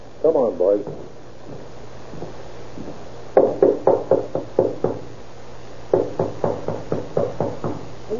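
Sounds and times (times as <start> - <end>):
firm knocking on a door: 0.8 - 2.3, 3.4 - 5.1, 5.9 - 7.9.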